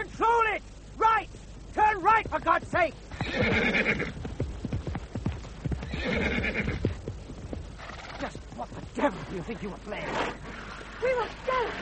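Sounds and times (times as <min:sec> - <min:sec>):
horse hooves clip-clopping while trotting: 0:01.8 - 0:11.7
speech: 0:02.1 - 0:04.3, 0:08.8 - 0:10.4, 0:11.0 - 0:11.7
horse whinnying: 0:03.1 - 0:04.2, 0:05.8 - 0:07.0, 0:07.8 - 0:08.4.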